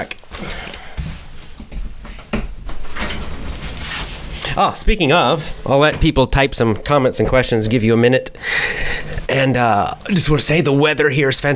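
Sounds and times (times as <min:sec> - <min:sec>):
window sliding open with a loud sustained rush: 0:02.1 - 0:04.6
speech: 0:04.6 - 0:11.5.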